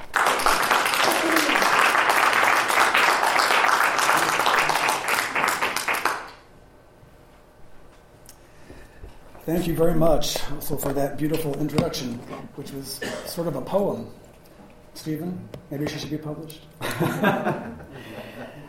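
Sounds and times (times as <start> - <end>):
audience applause at a poetry reading welcoming a poet: 0.0 - 6.4
speech: 9.5 - 14.2, 15.0 - 17.8
laughter: 16.8 - 18.6.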